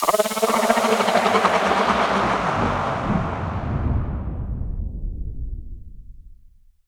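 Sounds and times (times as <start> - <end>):
vocal sweeping down: 0.0 - 4.7.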